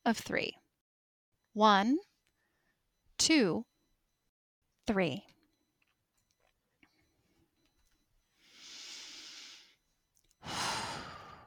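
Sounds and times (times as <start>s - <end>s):
speech: 0.1s - 0.6s, 1.6s - 2.1s, 3.2s - 3.7s, 4.9s - 5.3s
slow deep breathing close to the microphone: 8.2s - 11.4s.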